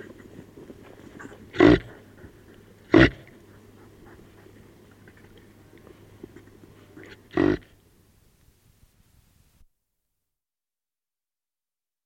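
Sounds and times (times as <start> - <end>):
reindeer grunting with brief harsh calls: 1.1 - 3.4, 7.0 - 7.8.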